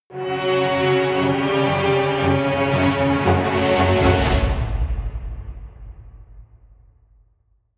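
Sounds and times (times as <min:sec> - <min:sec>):
negative medieval orchestral jingle: 0:00.1 - 0:06.0.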